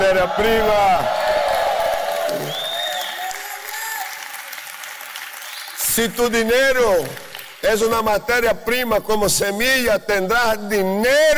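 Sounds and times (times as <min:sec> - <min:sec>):
crowd cheering and applauding: 0:00.0 - 0:07.6
speech: 0:00.1 - 0:01.3, 0:06.0 - 0:11.3
whistle: 0:02.5 - 0:03.2.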